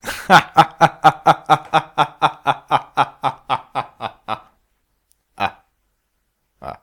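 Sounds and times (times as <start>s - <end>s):
nonsense laughter: 0.0s - 4.6s.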